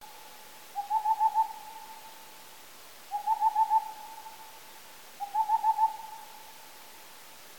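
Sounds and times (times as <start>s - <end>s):
Tengmalm's owl calling: 0.0s - 2.2s, 3.1s - 4.6s, 5.2s - 6.6s.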